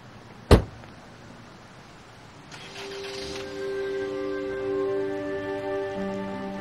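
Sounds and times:
car door closing: 0:00.5 - 0:00.8
car engine starting and idling: 0:02.4 - 0:05.6.

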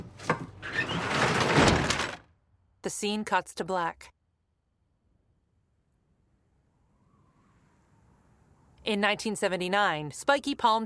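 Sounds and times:
pull-down door at the back of a loaded truck rattling shut: 0:00.2 - 0:02.3
speech: 0:02.8 - 0:04.2, 0:08.9 - 0:10.8.

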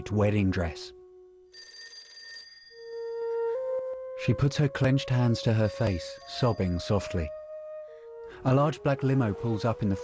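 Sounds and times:
speech: 0:00.0 - 0:01.0, 0:04.2 - 0:07.4, 0:08.4 - 0:10.0
telephone bell ringing in a bedroom: 0:01.4 - 0:03.3.

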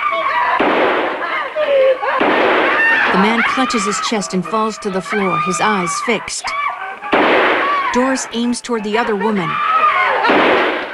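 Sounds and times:
dense noisy background: 0:00.0 - 0:10.9
pistol fired wildly: 0:00.5 - 0:01.4, 0:02.1 - 0:05.4, 0:07.0 - 0:08.5, 0:10.2 - 0:10.9
laughter: 0:01.2 - 0:02.2, 0:02.8 - 0:10.9
speech: 0:03.2 - 0:06.6, 0:07.9 - 0:09.7.

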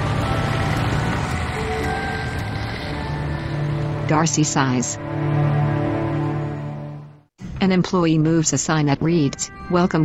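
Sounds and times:
car engine rumbling as the vehicle pulls off: 0:00.0 - 0:06.2
speech: 0:04.1 - 0:05.5, 0:07.6 - 0:10.0.

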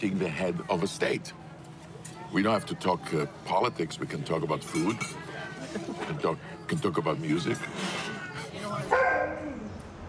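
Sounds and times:
speech: 0:00.0 - 0:01.5, 0:02.3 - 0:08.2
single sharp dog bark trailing into a whine: 0:08.9 - 0:09.4.

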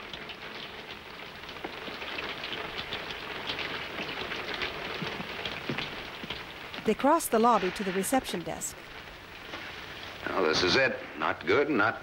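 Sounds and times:
steady rain pouring downtown at a hotel: 0:00.0 - 0:12.0
sharper rain drops pattering on hard surfaces: 0:01.5 - 0:07.2
speech: 0:06.9 - 0:08.9, 0:10.4 - 0:12.0.

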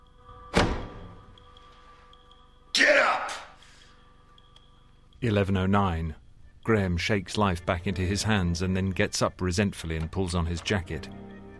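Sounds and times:
heavy metallic clunk of a door bolt being drawn back: 0:00.5 - 0:01.2
speech: 0:05.2 - 0:11.2.

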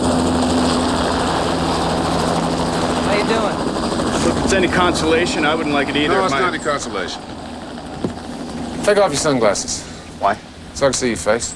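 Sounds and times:
helicopter engine and rotor whirring: 0:00.0 - 0:11.5
speech: 0:04.5 - 0:07.4, 0:08.8 - 0:11.5.

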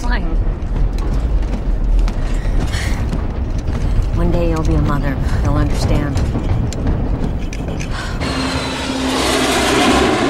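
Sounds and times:
rattling as the plane shakes: 0:00.4 - 0:10.2
airplane cabin noise flying through clouds in severe weather: 0:04.2 - 0:10.2
speech: 0:04.6 - 0:07.0.

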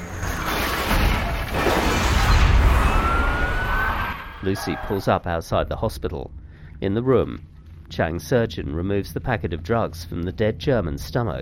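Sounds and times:
police cars crashing into rising bollards: 0:00.0 - 0:05.0
police sirens wailing: 0:02.6 - 0:05.2
speech: 0:04.4 - 0:11.4.

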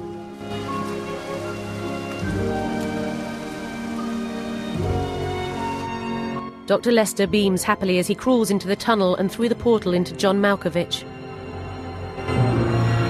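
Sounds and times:
pouring rain by the side of a road: 0:00.0 - 0:06.6
speech: 0:06.7 - 0:11.1.

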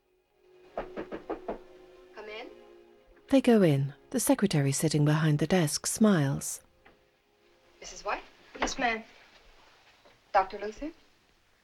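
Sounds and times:
knuckles knocking on a doctor's office door: 0:00.8 - 0:01.8
speech: 0:03.3 - 0:06.6, 0:07.8 - 0:09.2, 0:10.3 - 0:11.0.

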